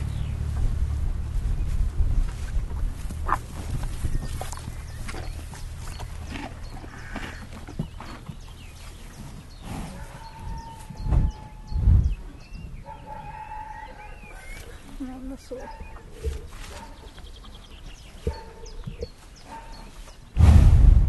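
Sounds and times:
Icelandic horse hooves clip-clopping: 0.0s - 8.6s
birds and fowl calling: 0.0s - 20.4s.

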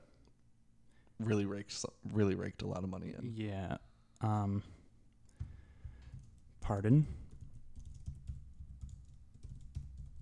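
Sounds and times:
low hum: 0.0s - 10.2s
speech: 1.2s - 4.8s, 6.7s - 7.2s
typing on a computer keyboard: 5.3s - 10.2s.

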